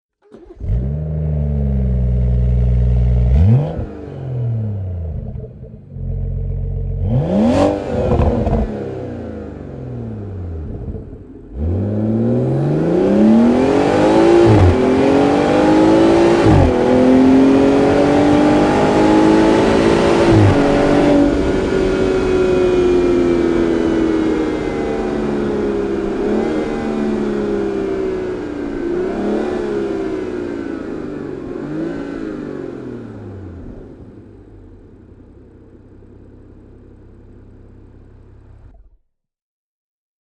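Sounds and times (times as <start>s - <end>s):
BMW 5 Series M Performance Parts exhaust system: 0.3s - 38.9s.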